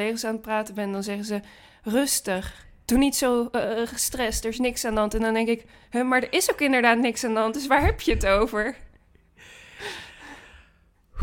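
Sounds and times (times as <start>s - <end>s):
speech: 0.0s - 8.9s
person breathing in and out: 9.4s - 11.2s.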